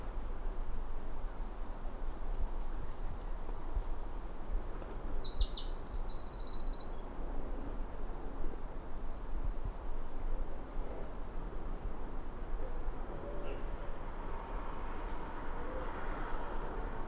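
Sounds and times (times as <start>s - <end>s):
constant low background noise: 0.0s - 17.0s
Eurasian wren song: 2.6s - 7.3s.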